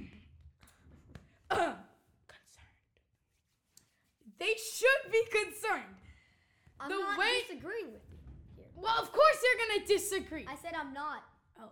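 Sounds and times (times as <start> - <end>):
person clearing throat: 1.5 - 2.0
speech: 4.4 - 6.0, 6.8 - 8.1, 8.8 - 11.7.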